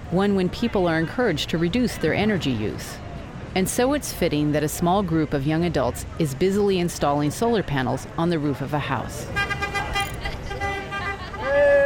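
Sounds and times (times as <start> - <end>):
traffic noise: 0.0 - 11.8
speech: 0.1 - 3.0, 3.6 - 9.5
car horns honking from passing cars: 9.3 - 11.8.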